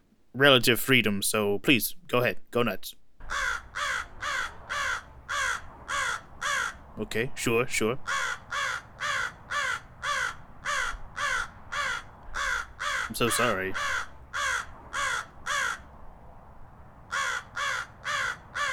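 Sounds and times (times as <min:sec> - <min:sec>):
speech: 0:00.4 - 0:04.1, 0:07.0 - 0:08.4, 0:13.2 - 0:14.0
raven cawing in harsh croaks: 0:03.2 - 0:07.0, 0:08.0 - 0:18.7.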